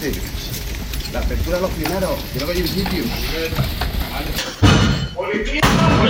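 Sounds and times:
speech: 0.0 - 0.5, 1.1 - 6.0
indistinct voices: 0.0 - 6.0
battering ram slamming into apartment door: 4.5 - 6.0.

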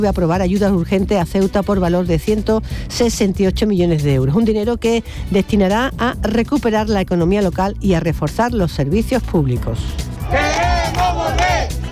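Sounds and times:
speech: 0.0 - 11.0
street protest crowd chanting and shouting at night in Ceuta: 10.0 - 11.9.

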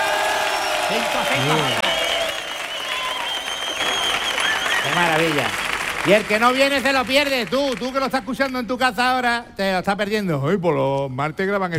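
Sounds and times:
live studio audience applauding and cheering: 0.0 - 8.7
speech: 0.9 - 1.9, 5.0 - 11.7.

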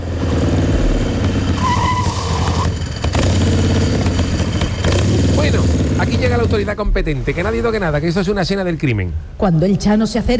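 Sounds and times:
loud motorcycle engine roaring and idling: 0.0 - 8.0
motorcycle tire screech skidding to a stop: 0.4 - 5.4
speech: 6.2 - 10.3.

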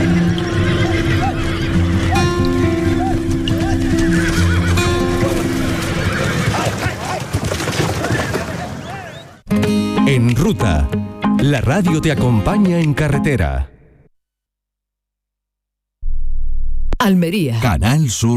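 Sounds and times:
voices murmuring: 0.0 - 4.2, 8.0 - 9.5
horse hooves clopping: 0.0 - 9.1
mares neighing: 0.0 - 9.4
speech: 10.5 - 13.7, 17.0 - 18.3.

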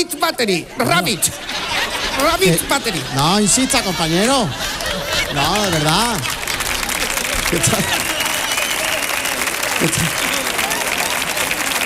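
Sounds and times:
laughter: 0.0 - 11.8
speech: 0.3 - 6.4, 7.5 - 8.0, 9.8 - 10.3
audience applause: 0.8 - 11.8.

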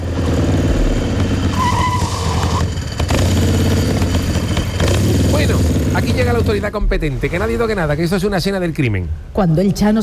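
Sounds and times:
motorbike without a vehicle inspection roaring as it arrives: 0.0 - 6.8
motorbike tire squealing as it brakes: 1.4 - 3.0
speech: 6.2 - 10.0.

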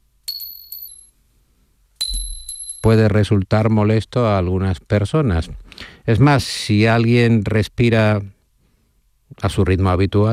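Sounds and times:
pin dropping: 0.2 - 1.1, 2.0 - 3.0
speech: 2.9 - 8.4, 9.3 - 10.3.

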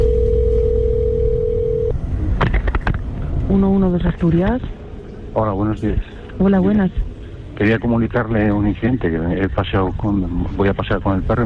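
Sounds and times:
telephone ring tone on a recorded emergency call: 0.0 - 1.9
noisy line on a recorded emergency call: 0.0 - 11.4
speech: 3.6 - 4.8, 5.4 - 7.0, 7.6 - 11.4.

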